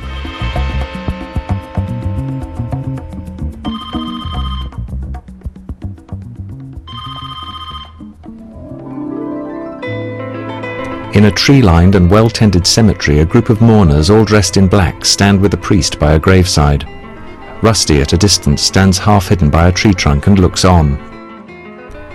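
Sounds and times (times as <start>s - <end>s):
telephone bell ringing in an empty room: 1.4s - 4.9s, 6.9s - 8.2s
speech: 11.2s - 17.0s, 17.6s - 21.1s.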